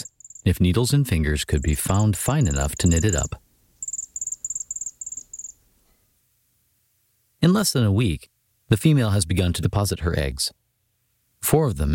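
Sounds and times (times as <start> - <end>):
speech: 0.5 - 3.5, 7.4 - 10.6, 11.4 - 11.9
Cedar Waxwing calls: 1.5 - 5.6.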